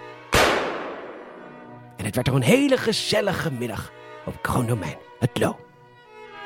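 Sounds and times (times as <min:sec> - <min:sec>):
gunshot fired by the king at a hunt: 0:00.3 - 0:01.6
speech: 0:02.1 - 0:05.7.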